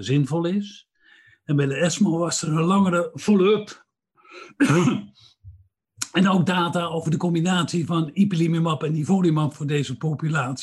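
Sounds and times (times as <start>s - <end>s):
speech: 0.0s - 3.8s, 4.4s - 5.3s, 6.1s - 10.6s
person coughing harshly: 4.4s - 5.2s.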